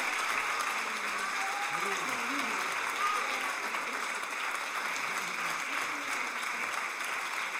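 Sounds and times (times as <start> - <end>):
audience applause after a performance: 0.0 - 7.5.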